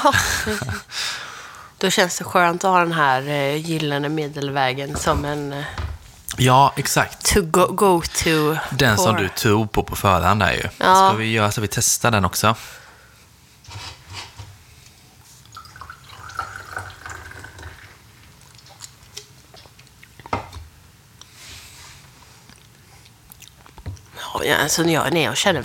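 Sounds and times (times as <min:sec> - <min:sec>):
laughter: 0:00.0 - 0:00.9
speech: 0:00.0 - 0:01.0, 0:01.8 - 0:12.8, 0:13.7 - 0:13.9, 0:24.4 - 0:25.6
beer glugging and fizzing as poured into a glass: 0:15.5 - 0:18.0.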